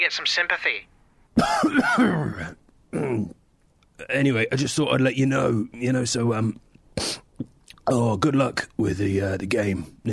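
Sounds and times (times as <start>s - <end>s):
speech: 0.0s - 3.4s, 4.0s - 7.2s, 7.9s - 10.1s
person raspy coughing: 1.4s - 3.3s
person clearing throat: 1.4s - 3.4s.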